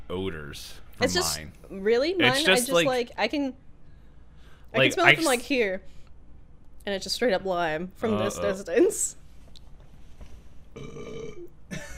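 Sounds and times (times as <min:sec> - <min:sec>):
speech: 0:00.1 - 0:03.6, 0:04.7 - 0:06.0, 0:06.8 - 0:09.2, 0:10.8 - 0:11.9
person burping: 0:10.8 - 0:11.9.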